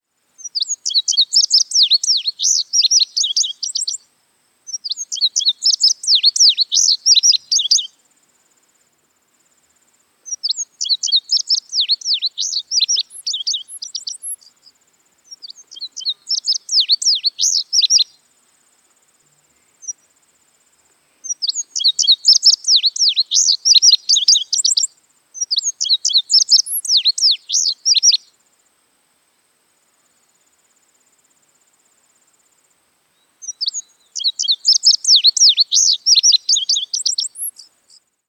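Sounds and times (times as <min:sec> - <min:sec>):
Indigo Bunting long aggressive song: 0:00.4 - 0:04.1, 0:04.7 - 0:08.1, 0:10.2 - 0:18.3, 0:19.3 - 0:20.2, 0:21.1 - 0:28.4, 0:33.1 - 0:38.1.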